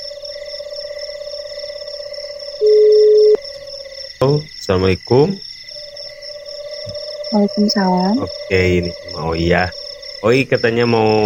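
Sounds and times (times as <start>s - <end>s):
telephone ring tone on an outgoing call: 2.6s - 3.4s
speech: 4.2s - 5.5s, 7.3s - 11.2s.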